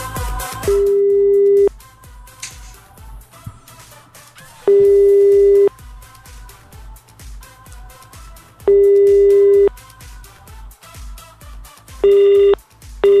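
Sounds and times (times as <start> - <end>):
unanswered outgoing telephone call ringing tone: 0.7 - 1.7, 4.7 - 5.7, 8.7 - 9.7, 12.0 - 13.1.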